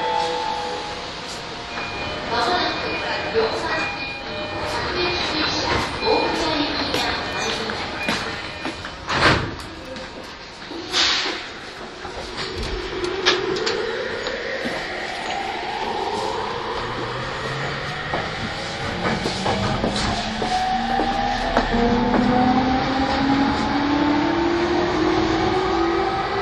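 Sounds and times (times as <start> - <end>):
E231 series commuter train car rumble: 0.2 - 26.4.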